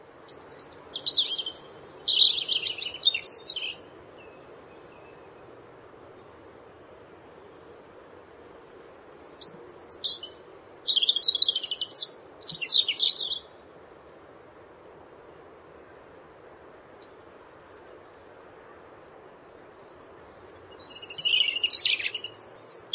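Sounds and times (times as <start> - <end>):
faint low noise: 0.0 - 22.9
European robin singing: 0.3 - 5.4, 9.4 - 13.6, 19.8 - 22.9.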